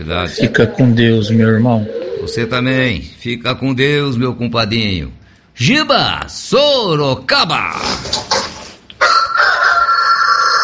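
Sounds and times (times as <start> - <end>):
speech: 0.0 - 8.4
rooster crowing: 9.0 - 10.6.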